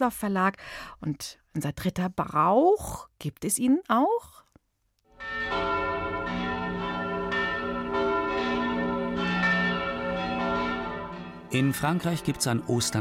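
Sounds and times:
speech: 0.0s - 4.4s, 11.5s - 13.0s
church bells ringing: 5.1s - 13.0s.

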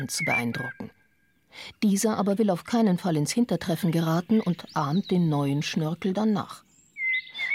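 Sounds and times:
speech: 0.0s - 0.9s, 1.5s - 6.6s
blackbird singing a whistled phrase: 0.0s - 1.5s, 3.7s - 6.0s, 6.7s - 7.5s.

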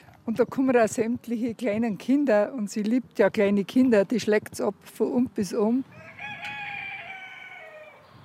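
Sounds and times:
speech: 0.3s - 6.0s
rooster crowing: 5.9s - 8.2s.

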